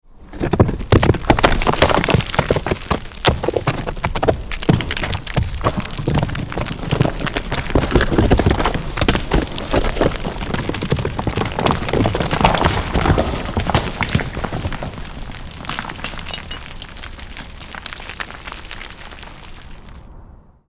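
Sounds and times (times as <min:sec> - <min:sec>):
rockfall: 0:00.3 - 0:20.1.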